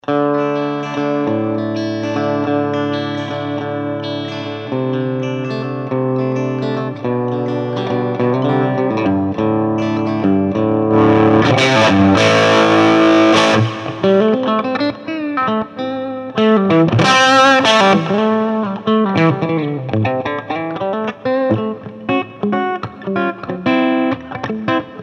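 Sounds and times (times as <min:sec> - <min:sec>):
dirty guitar amp: 0:00.0 - 0:25.0.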